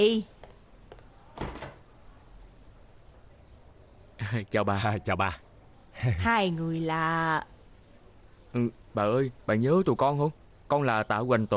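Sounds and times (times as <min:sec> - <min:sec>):
speech: 0:00.0 - 0:00.3, 0:04.3 - 0:05.4, 0:06.0 - 0:07.5, 0:08.5 - 0:11.5
door opening with rattle and scrape: 0:01.4 - 0:01.9.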